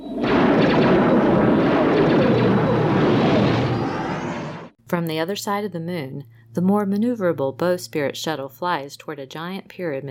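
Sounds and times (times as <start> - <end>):
giant laser cannons firing on a spaceship: 0.1 - 4.7
speech: 4.9 - 10.0.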